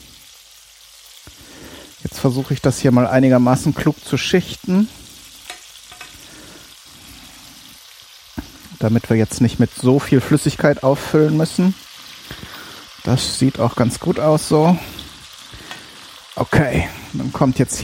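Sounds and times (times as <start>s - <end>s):
meat pieces sizzling in a frying pan: 0.0s - 17.8s
speech: 2.0s - 5.0s, 8.8s - 11.8s, 13.1s - 15.0s, 16.4s - 17.8s
soft clinks of utensils: 5.5s - 6.2s.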